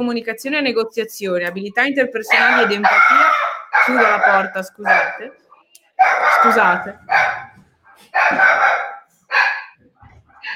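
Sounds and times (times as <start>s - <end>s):
speech: 0.0s - 5.4s, 6.0s - 7.3s, 8.2s - 8.8s
dog barking and yelping excitedly as a family member returns home: 2.3s - 5.4s, 6.0s - 10.5s.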